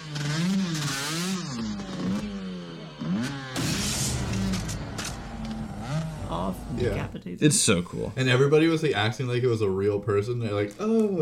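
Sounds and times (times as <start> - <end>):
motorcycle engine revving: 0.0 - 7.2
speech: 6.5 - 11.2.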